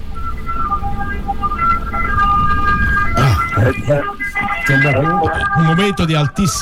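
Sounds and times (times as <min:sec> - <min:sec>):
ambulance siren wailing: 0:00.0 - 0:06.6
low street rumble: 0:00.0 - 0:06.6
speech: 0:03.7 - 0:06.6.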